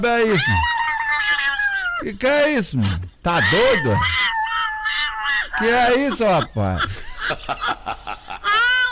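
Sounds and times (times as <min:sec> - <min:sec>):
laughter: 0:00.0 - 0:00.7, 0:02.0 - 0:04.2, 0:05.1 - 0:08.8
speech: 0:00.0 - 0:00.8, 0:02.0 - 0:04.2, 0:05.6 - 0:07.7
person imitating a cat meowing: 0:00.4 - 0:02.0, 0:03.4 - 0:05.6.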